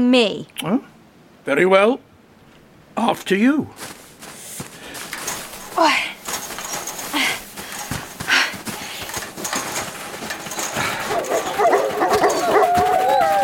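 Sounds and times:
speech: 0:00.0 - 0:00.9, 0:01.5 - 0:02.1, 0:03.0 - 0:04.0, 0:05.8 - 0:06.1
wolves barking and yipping: 0:09.4 - 0:13.4
wolves giving short howls: 0:10.5 - 0:13.4.

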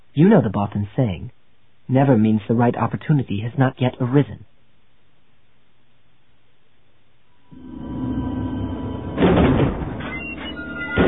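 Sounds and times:
speech: 0:00.2 - 0:04.5
heavy double gate doors grinding open: 0:07.6 - 0:11.0
faint metallic squeaks: 0:10.0 - 0:11.0.

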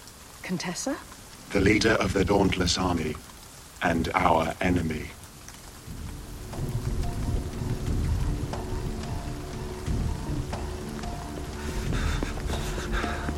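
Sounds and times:
steady rain pattering on hard surfaces: 0:00.0 - 0:13.3
speech: 0:00.5 - 0:05.2
low rumble, possibly thunder: 0:05.8 - 0:13.3.

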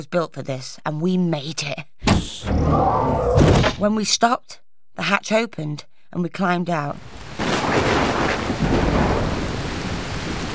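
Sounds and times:
speech: 0:00.0 - 0:08.7
heavy rain in a thunderstorm: 0:07.0 - 0:10.5
deep thunder rumbling: 0:07.5 - 0:10.5.

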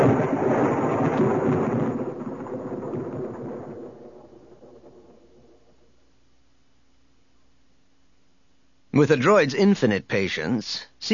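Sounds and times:
rolling thunder in a thunderstorm: 0:00.0 - 0:06.0
speech: 0:09.0 - 0:11.1.

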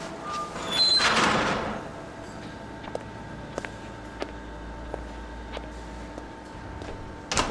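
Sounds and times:
control room door sliding shut: 0:00.2 - 0:02.0, 0:07.3 - 0:07.4.

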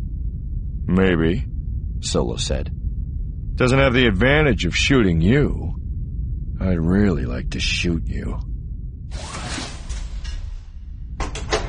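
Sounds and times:
low rumble: 0:00.0 - 0:11.6
speech: 0:00.9 - 0:02.8, 0:03.6 - 0:05.8, 0:06.6 - 0:08.5
door easing open with a soft breathy swish: 0:09.1 - 0:11.6.

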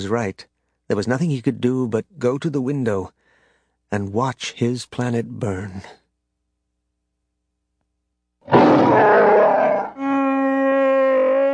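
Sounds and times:
speech: 0:00.0 - 0:03.2, 0:03.9 - 0:06.0, 0:08.6 - 0:09.3
Wookiee roaring in frustration: 0:08.5 - 0:11.5.

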